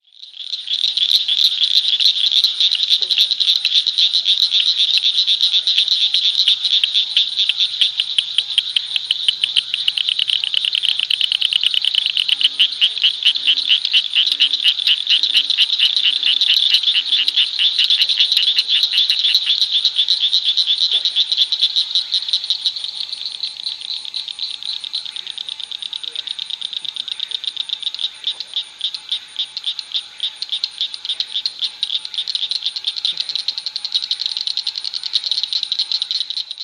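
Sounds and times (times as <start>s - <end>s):
Acris blanchardi frog call of cricket-like clicks: 0.0s - 36.6s.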